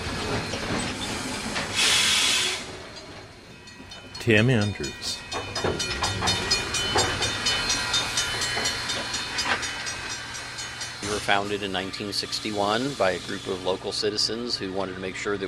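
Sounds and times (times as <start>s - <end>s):
clanking, creaking articulating metal panels of steam locomotive: 0.0s - 1.8s, 2.8s - 11.5s
steam locomotive rhythmic huffing: 0.0s - 15.3s
steam locomotive hiss of steam: 1.0s - 2.8s, 6.6s - 14.4s
speech: 4.2s - 6.6s, 11.1s - 15.4s.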